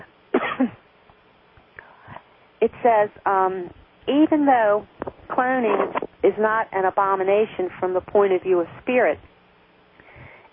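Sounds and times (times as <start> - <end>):
person coughing: 0.3 - 0.8
speech: 2.6 - 9.3.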